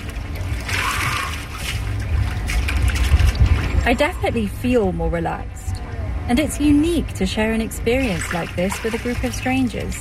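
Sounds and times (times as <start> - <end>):
water splashing in an ice-cold plunge pool at a sauna in London: 0.0 - 4.8, 7.7 - 9.9
low rumbling undertone: 0.0 - 9.9
speech: 3.9 - 5.6, 6.3 - 9.9.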